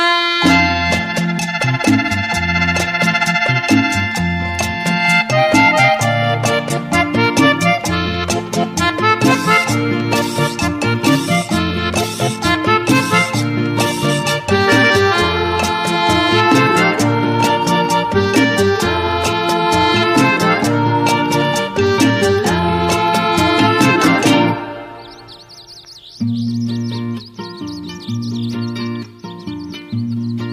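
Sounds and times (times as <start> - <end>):
bright sustained accordion chords in a vallenato song: 0.0 - 30.5
steady driving percussion beat: 0.5 - 24.4
high chirping tone: 0.5 - 30.5.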